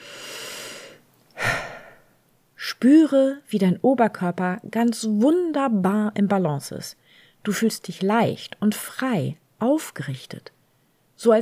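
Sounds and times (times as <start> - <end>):
deep breathing in and out during a guided posture and breathing exercise: 0.0 - 2.2
speech: 2.8 - 10.6, 11.2 - 11.4.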